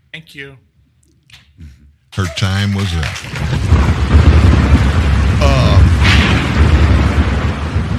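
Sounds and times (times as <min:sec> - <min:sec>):
speech: 0:00.2 - 0:00.7, 0:02.2 - 0:03.9
thunder rumbling: 0:02.6 - 0:07.9.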